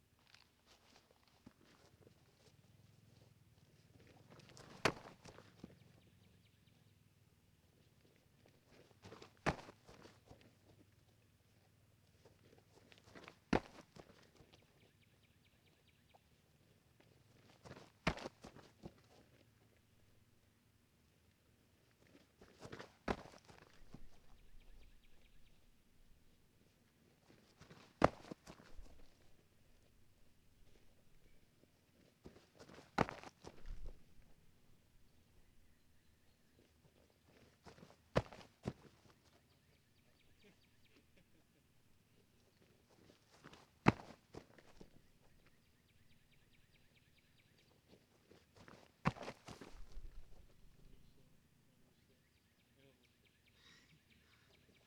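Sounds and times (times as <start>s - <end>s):
footsteps on dirt: 4.3s - 5.8s, 9.0s - 10.5s, 12.7s - 14.6s, 17.4s - 19.4s, 22.0s - 25.3s, 27.3s - 29.9s, 32.2s - 34.4s, 37.3s - 39.4s, 42.6s - 45.6s, 48.2s - 50.8s.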